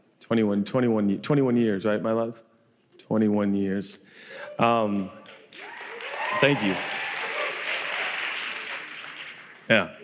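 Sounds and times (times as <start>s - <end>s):
speech: 0.3s - 2.5s, 3.1s - 5.7s, 6.4s - 6.9s, 9.7s - 10.0s
audience at a comedy set applauding: 4.8s - 10.0s.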